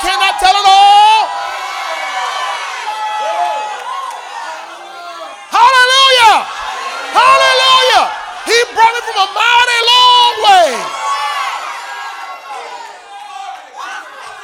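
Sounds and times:
audience shouting and cheering in worship: 0.0 - 14.4.

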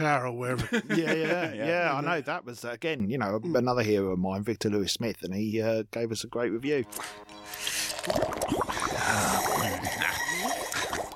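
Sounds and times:
speech: 0.0 - 9.9
laughter: 0.6 - 2.0
bubbling and gurgling in a liquid: 7.6 - 11.1.

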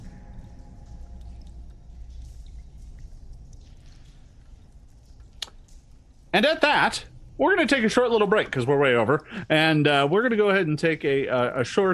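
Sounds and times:
deep low rumble: 0.0 - 6.3
thick gloopy bubbling slime pool: 0.0 - 6.3
speech: 6.4 - 11.9.

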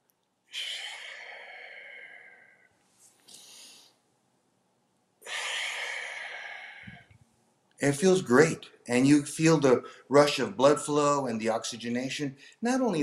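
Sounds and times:
deep forceful breathing: 0.5 - 4.0, 5.2 - 7.2, 9.8 - 10.1
speech: 7.8 - 13.0.

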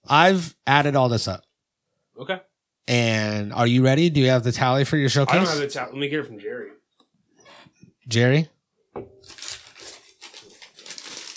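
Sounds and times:
speech: 0.1 - 1.5, 2.2 - 6.8, 8.1 - 9.4
wrapping paper crinkling: 9.2 - 11.3.

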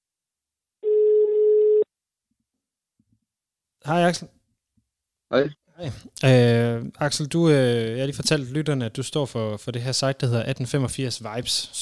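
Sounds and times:
electronic telephone ringback tone while placing a call: 0.8 - 1.8
speech: 3.8 - 4.4, 5.3 - 11.8.

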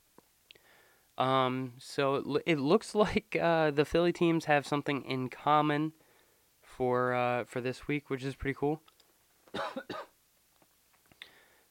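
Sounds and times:
soft breath: 0.5 - 1.2, 6.0 - 6.6, 11.2 - 11.6
speech: 1.2 - 6.0, 6.8 - 8.9, 9.5 - 10.0
sharp coughs: 9.5 - 10.1.

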